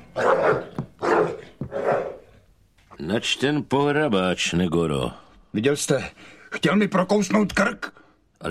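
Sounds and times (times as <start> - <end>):
agitated aggressive dog barking: 0.2 - 2.3
speech: 3.1 - 8.4.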